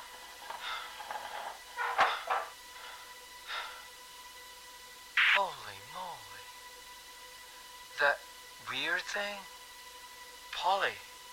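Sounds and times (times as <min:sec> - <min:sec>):
chair scraping and shuffling across the floor: 0:00.0 - 0:02.6
knock, creaks and bumps of someone climbing onto a chair: 0:00.1 - 0:02.6
speech: 0:05.4 - 0:05.7, 0:08.0 - 0:09.6, 0:10.6 - 0:11.0.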